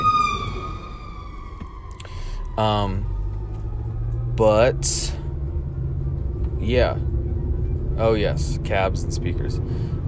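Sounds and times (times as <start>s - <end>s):
loud blaring burst: 0.0s - 1.6s
fire truck engines rumbling climbing a hill: 0.0s - 10.0s
speech: 2.6s - 3.1s, 4.4s - 5.2s, 6.6s - 7.1s, 8.0s - 10.0s.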